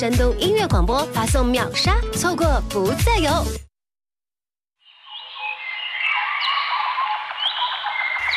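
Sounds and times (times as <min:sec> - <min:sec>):
speech: 0:00.0 - 0:03.7
dense birdsong chorus of chirps, whistles and trills: 0:04.8 - 0:08.3.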